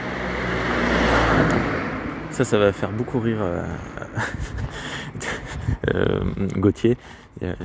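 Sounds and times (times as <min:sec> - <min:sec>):
car passing by outside with engine and tire rumble: 0:00.0 - 0:02.7
speech: 0:02.4 - 0:07.6
laughter: 0:03.9 - 0:05.6.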